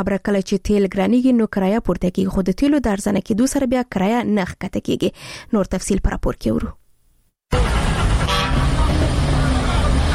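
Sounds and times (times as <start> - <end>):
speech: 0.0 - 6.8
car horn toot at a car and bus station in Kandahar: 7.5 - 9.0
loud steady traffic noise at a car and bus station in Kandahar: 7.5 - 10.1.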